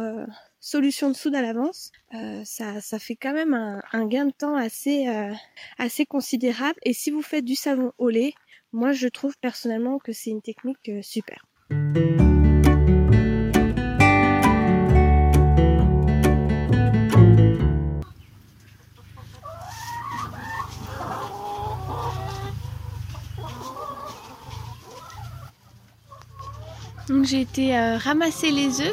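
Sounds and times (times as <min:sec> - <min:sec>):
speech: 0:00.0 - 0:12.3, 0:27.1 - 0:28.9
plucked rhythmic music: 0:11.7 - 0:18.0
hens clucking inside a henhouse during a thunderstorm: 0:18.0 - 0:28.9.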